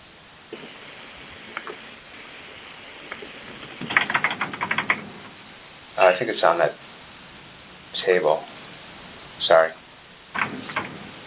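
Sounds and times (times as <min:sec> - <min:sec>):
typing on a computer keyboard to look something up: 0:03.8 - 0:05.1
speech: 0:06.0 - 0:06.8, 0:08.0 - 0:08.5.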